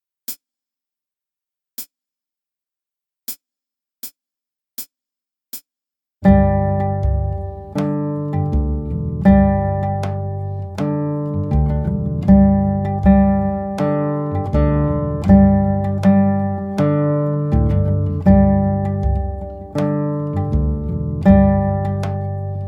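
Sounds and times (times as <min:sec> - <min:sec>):
guitar playing traditional Austrian tune: 0:06.2 - 0:22.6.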